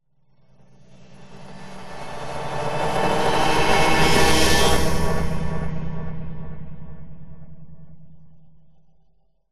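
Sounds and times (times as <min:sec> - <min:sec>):
pulsating flyby swoosh: 0:00.9 - 0:06.4.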